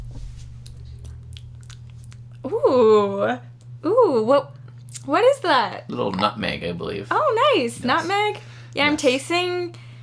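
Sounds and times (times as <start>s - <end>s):
steady low hum: 0.0s - 10.0s
chewing and wet mouth noises: 0.6s - 2.5s, 4.7s - 5.1s
speech: 2.4s - 9.8s.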